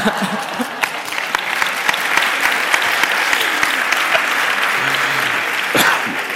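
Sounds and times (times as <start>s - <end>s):
audience applauding for a speaker: 0.0s - 6.3s
laughter: 0.0s - 6.3s
faint voices: 2.2s - 6.3s.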